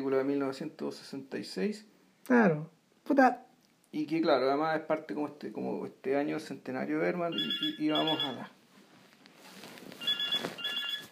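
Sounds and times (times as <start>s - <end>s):
speech: 0.0s - 8.6s
faint noise: 0.0s - 11.1s
telephone ringing with an electronic warbling tone: 7.3s - 8.5s, 10.0s - 11.1s.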